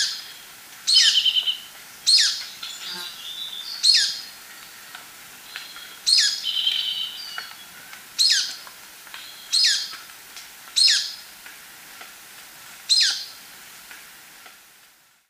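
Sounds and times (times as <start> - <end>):
Golden-crowned Flycatcher calling in Ecuador: 0.9 - 4.4, 5.5 - 7.6, 8.2 - 8.6, 9.2 - 9.9.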